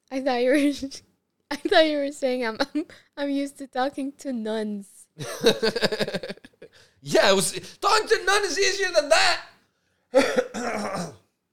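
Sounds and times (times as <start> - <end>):
speech: 0.1 - 9.5, 10.1 - 11.2
laughter: 5.2 - 6.7
person coughing: 10.1 - 11.3
throat clearing: 10.2 - 11.3.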